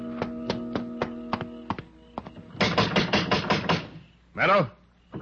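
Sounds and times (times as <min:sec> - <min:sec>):
sharp hard knocks on a door: 0:00.2 - 0:04.0
person talking loudly and urgently: 0:04.4 - 0:04.8.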